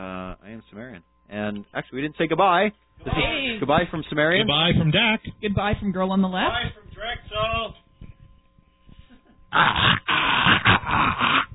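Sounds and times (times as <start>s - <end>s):
speech: 0.6s - 7.8s, 9.5s - 10.0s
dog growling: 9.5s - 11.5s.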